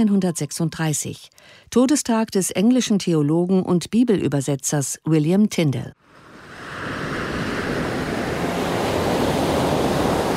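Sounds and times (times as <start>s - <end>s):
speech: 0.0s - 6.2s
ocean surf roaring with waves washing in: 6.0s - 10.3s
windy hiss: 6.0s - 10.3s.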